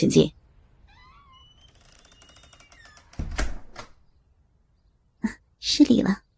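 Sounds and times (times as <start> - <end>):
speech: 0.0 - 0.4, 5.2 - 6.2
door creaking open with a soft thud as someone enters: 0.8 - 4.0.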